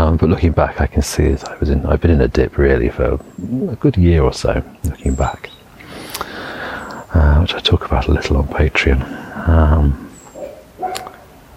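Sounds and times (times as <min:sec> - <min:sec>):
speech: 0:00.2 - 0:05.6, 0:07.1 - 0:10.1
loud deep dog bark next door: 0:10.4 - 0:11.4.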